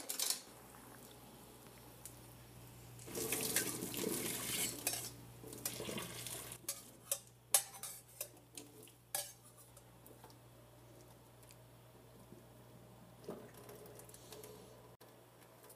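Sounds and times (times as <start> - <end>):
metallic clanks and knocks of a pot and utensils: 0.0 - 0.5, 3.1 - 9.9
water rushing and splashing as pasta is poured into a colander: 3.0 - 6.6.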